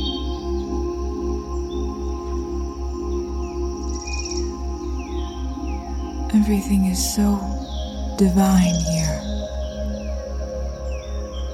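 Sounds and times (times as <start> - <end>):
birds chirping and calling: 0.0 - 11.5
insects droning: 0.0 - 11.5
low rhythmic pulse: 0.0 - 11.5
speech: 6.3 - 7.6, 8.2 - 9.3.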